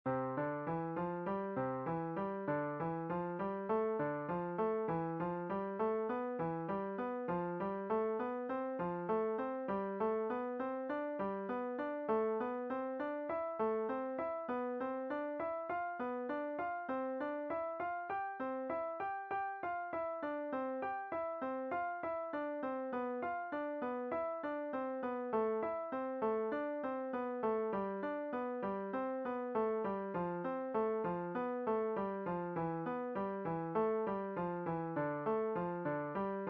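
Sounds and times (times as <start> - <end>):
five finger step and skip piano exercises: 0.1 - 36.4.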